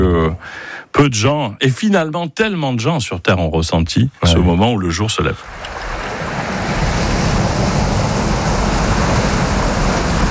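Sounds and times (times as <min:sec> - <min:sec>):
speech: 0:00.3 - 0:05.8
ocean waves breaking on a beach: 0:05.4 - 0:10.2.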